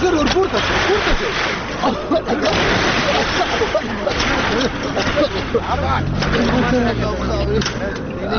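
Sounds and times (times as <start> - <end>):
laughter: 0.0 - 8.3
people talking: 0.0 - 8.3
large container-like truck engine approaching: 5.1 - 8.3.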